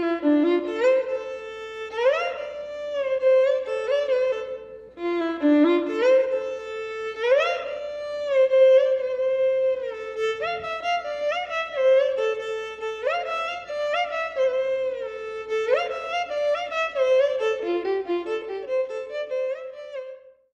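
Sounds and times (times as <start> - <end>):
violin background music ringtone: 0.0 - 20.2.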